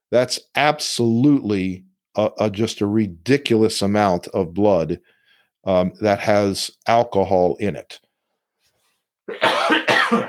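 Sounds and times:
speech: 0:00.1 - 0:08.0, 0:09.3 - 0:10.2
loud harsh coughs: 0:09.3 - 0:10.2.

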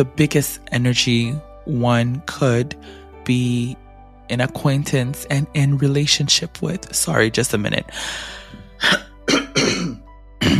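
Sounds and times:
speech: 0:00.0 - 0:09.4
rough noisy throat clearing: 0:08.8 - 0:10.5.

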